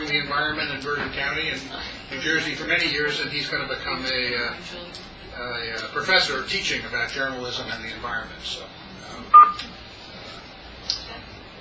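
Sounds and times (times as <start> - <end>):
quiet room hum: 0.0 - 11.5
speech: 0.1 - 9.7
conference call join tones: 9.3 - 9.6.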